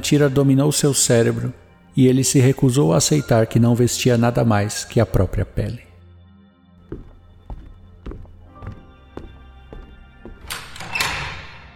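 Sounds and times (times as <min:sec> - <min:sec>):
speech: 0:00.0 - 0:05.9
steady thudding footsteps: 0:06.8 - 0:11.0
door opening with a sweeping hissing rush: 0:10.4 - 0:11.7.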